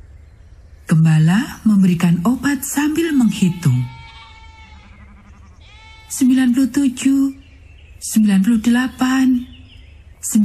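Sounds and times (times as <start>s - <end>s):
speech: 1.4s - 4.0s, 6.1s - 7.4s, 8.0s - 9.5s, 10.2s - 10.4s
little sheep bleating: 2.8s - 6.7s.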